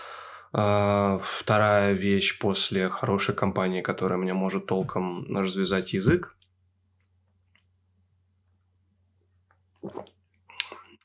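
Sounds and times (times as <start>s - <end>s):
speech: 0.5s - 6.4s
sipping spicy tomato gose beer: 9.5s - 11.0s.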